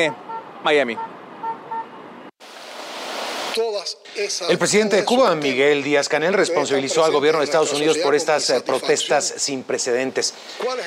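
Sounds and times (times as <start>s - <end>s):
speech: 0.0s - 1.1s, 3.6s - 10.8s
car horns honking at a street protest in Miami: 0.0s - 2.3s.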